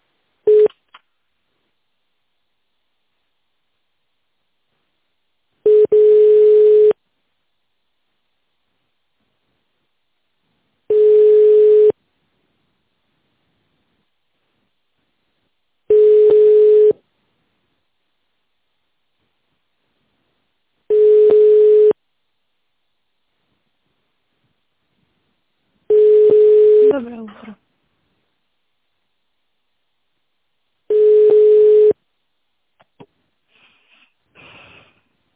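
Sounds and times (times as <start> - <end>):
telephone ringback tone while a call is being transferred: 0.5 - 0.7, 5.7 - 7.0, 10.9 - 12.0, 15.9 - 17.0, 20.9 - 22.0, 25.9 - 26.9, 30.9 - 32.0.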